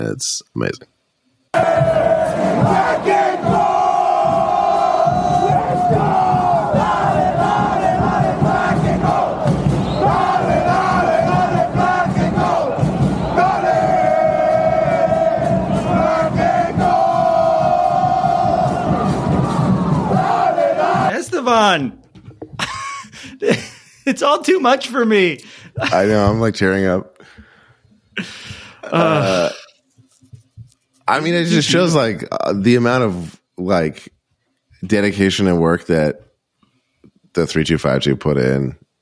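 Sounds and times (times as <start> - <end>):
speech: 0.0 - 0.9, 21.5 - 22.0, 24.1 - 27.1, 28.2 - 29.6, 31.1 - 34.2, 34.8 - 36.2, 37.4 - 38.8
large crowd of soccer supporters chanting in a stadium: 1.5 - 21.2
laughter: 22.6 - 24.2, 28.2 - 29.7.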